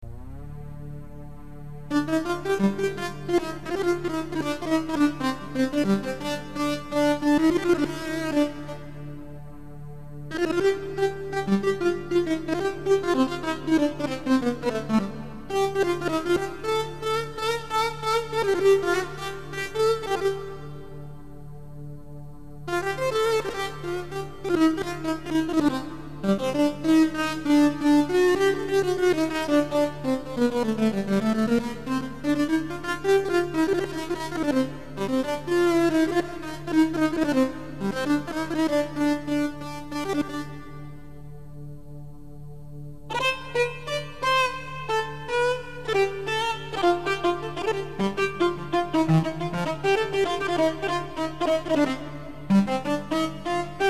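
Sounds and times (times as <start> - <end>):
kamancheh bowed fiddle playing: 0.0 - 41.8, 43.0 - 53.8.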